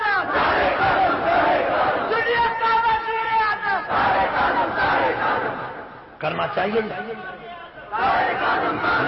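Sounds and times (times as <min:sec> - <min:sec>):
large crowd chanting slogans in unison: 0:00.1 - 0:02.6, 0:03.7 - 0:06.1, 0:07.9 - 0:09.0
speech: 0:06.2 - 0:09.0.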